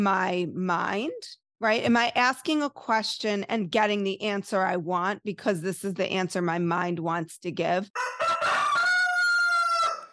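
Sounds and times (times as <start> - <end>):
speech: 0.0 - 8.2
rooster crowing: 8.0 - 10.1.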